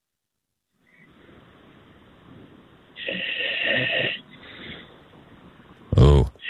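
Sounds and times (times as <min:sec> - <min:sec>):
radio call-in caller from Montreal snoring over a telephone line: 0:03.0 - 0:04.3, 0:05.9 - 0:06.4.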